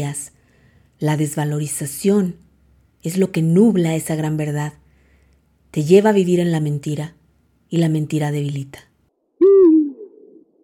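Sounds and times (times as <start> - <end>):
speech: 0.0 - 0.3, 1.0 - 4.8, 5.7 - 8.9
owl hooting: 9.4 - 10.5.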